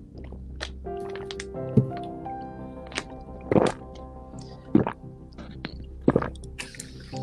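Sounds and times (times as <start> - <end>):
person with a very large Adam's apple swallowing water: 2.9 - 7.0.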